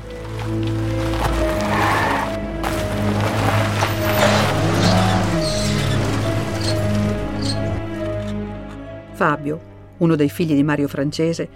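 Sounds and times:
car engine idling and revving as the car pulls away: 0.0s - 8.7s
speech: 0.5s - 0.8s, 9.2s - 11.5s.

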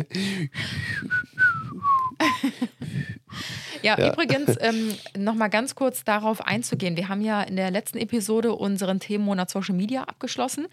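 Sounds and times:
speech: 0.0s - 1.2s, 3.8s - 10.7s
person whistling a short wavering melody: 0.9s - 2.4s
laughter: 3.7s - 5.0s.

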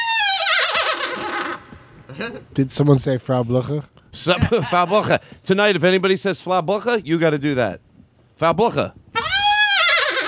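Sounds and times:
horse whinnying: 0.0s - 1.8s, 9.2s - 10.2s
speech: 2.2s - 9.0s
laughter: 4.3s - 5.2s.

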